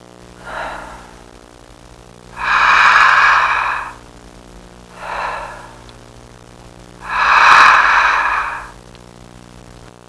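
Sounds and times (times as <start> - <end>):
person snoring deeply: 0.4 - 1.3, 2.3 - 4.1, 4.9 - 5.9, 7.0 - 8.8.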